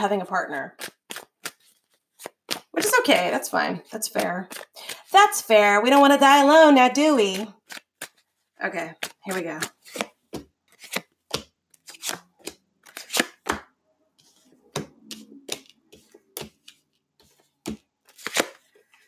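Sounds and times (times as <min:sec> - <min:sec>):
speech: 0:00.0 - 0:00.8, 0:03.1 - 0:07.8, 0:08.6 - 0:10.1
cards pulled from a deck: 0:00.8 - 0:02.7, 0:07.3 - 0:08.2, 0:09.0 - 0:13.6, 0:17.7 - 0:18.6.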